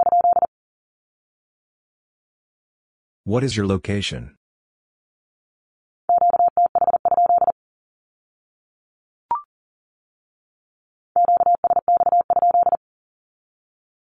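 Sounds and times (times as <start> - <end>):
Morse code beeps sending a Q-code at 40 words per minute: 0.0 - 0.5, 6.1 - 7.5, 11.2 - 12.8
speech: 3.3 - 4.4.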